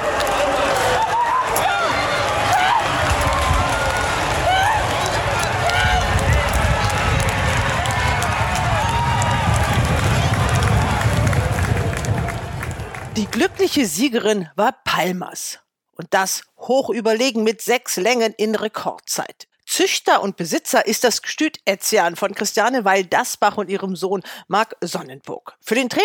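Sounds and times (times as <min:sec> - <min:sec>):
large racecourse crowd roaring and cheering during a horse race: 0:00.0 - 0:13.8
speech: 0:13.6 - 0:26.0.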